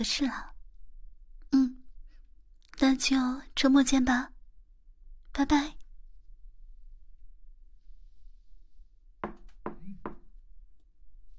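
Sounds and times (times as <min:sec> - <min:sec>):
speech: 0:00.0 - 0:00.5, 0:02.8 - 0:04.3, 0:05.4 - 0:05.8
sharp knocks on the door of a home: 0:09.2 - 0:10.3.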